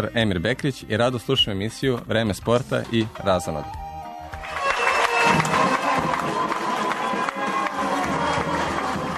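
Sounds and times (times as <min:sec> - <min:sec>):
speech: 0:00.0 - 0:03.8
crowd of friends and fans cheering and shouting at an airport: 0:03.7 - 0:09.1.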